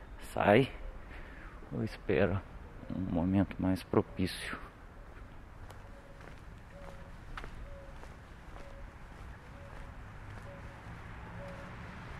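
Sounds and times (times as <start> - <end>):
speech: 0.3 - 0.8, 1.7 - 4.7
ruddy ground dove cooing: 5.0 - 11.8.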